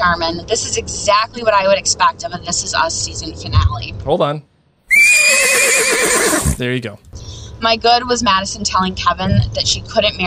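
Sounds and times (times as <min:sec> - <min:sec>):
speech: 0:00.0 - 0:10.2
horse neighing: 0:04.9 - 0:06.6.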